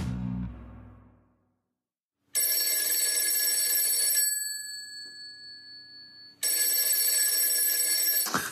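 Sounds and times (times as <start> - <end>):
telephone ringing tone during outgoing call: 2.3 - 8.5.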